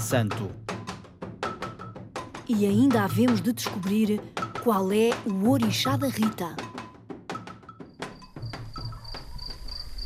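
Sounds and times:
speech: 0.0s - 0.7s, 2.5s - 6.7s
crickets chirping at dusk: 7.3s - 10.0s.

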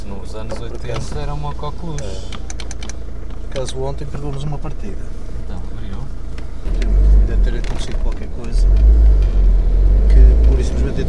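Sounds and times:
diesel car engine running with a heavy low rumble: 0.0s - 11.0s
speech: 0.4s - 2.4s, 3.6s - 5.2s, 7.3s - 9.5s, 10.1s - 11.0s.

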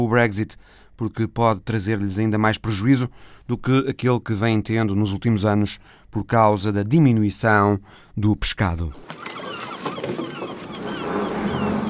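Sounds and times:
speech: 0.0s - 10.3s
boat engines at a fishing harbour: 9.0s - 11.8s
seagulls calling at a fishing harbour: 9.0s - 11.8s
water rumbling at a fishing harbour: 9.0s - 11.8s.

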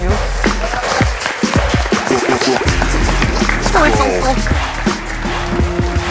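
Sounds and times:
crowd clapping: 0.0s - 6.1s.

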